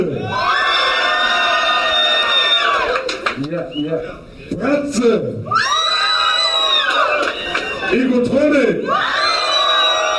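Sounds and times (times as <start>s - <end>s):
concert audience cheering and screaming: 0.2s - 3.1s, 5.5s - 8.2s, 8.8s - 10.1s
speech: 3.7s - 5.7s.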